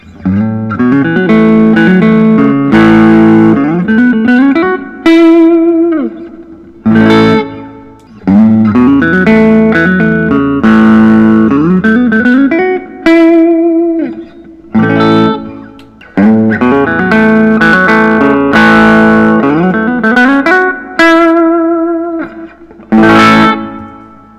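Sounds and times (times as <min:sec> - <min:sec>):
Collings I-35 Deluxe cherry sunburst electric guitar: 0:00.0 - 0:24.3.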